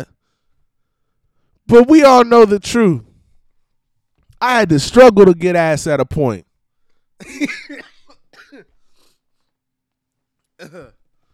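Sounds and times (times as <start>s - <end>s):
speech: 1.7s - 3.1s, 4.4s - 6.5s, 7.2s - 7.9s, 10.6s - 11.0s
person coughing: 7.2s - 8.8s, 10.6s - 11.1s.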